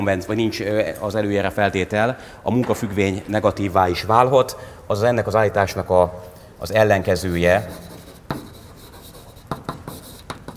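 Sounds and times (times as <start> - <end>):
speech: 0.0 - 7.9
writing on a board: 7.3 - 10.5.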